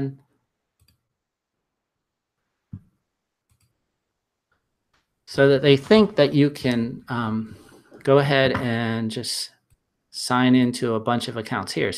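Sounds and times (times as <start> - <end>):
speech: 0.0 - 0.2, 5.3 - 9.6, 10.2 - 11.9
computer mouse clicks opening a new tab in a web browser: 0.8 - 1.0, 3.5 - 3.8.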